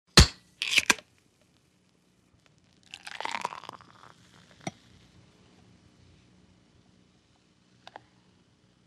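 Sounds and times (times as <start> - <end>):
something being opened: 0.6 - 1.0
liquid pouring: 2.8 - 4.7.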